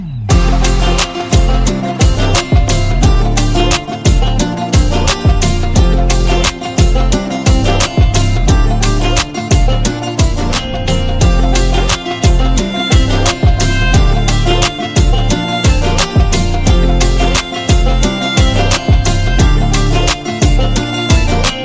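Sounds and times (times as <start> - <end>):
instrumental tone: 0.1 - 21.6.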